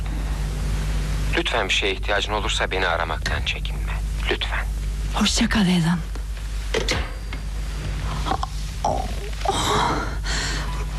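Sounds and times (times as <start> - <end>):
low steady hum: 0.0 - 10.9
speech: 1.4 - 6.1
woman who cannot breathe gasping for breath: 9.4 - 10.8.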